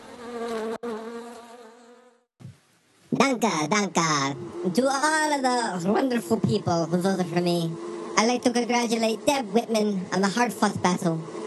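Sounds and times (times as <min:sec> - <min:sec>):
swarm of bees buzzing: 0:00.0 - 0:02.2, 0:06.0 - 0:11.4
speech: 0:03.2 - 0:11.4.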